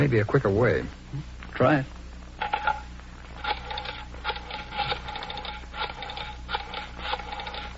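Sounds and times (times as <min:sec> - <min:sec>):
speech: 0:00.0 - 0:02.0
telephone being dialed with mechanical whirring and clicking: 0:02.4 - 0:07.7.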